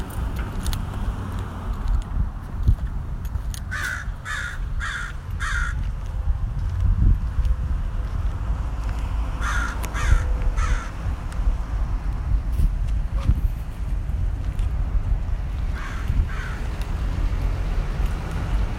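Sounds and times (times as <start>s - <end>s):
low rumble of wind: 0.0s - 18.7s
crow cawing: 3.7s - 5.8s, 9.4s - 11.0s, 15.8s - 16.7s.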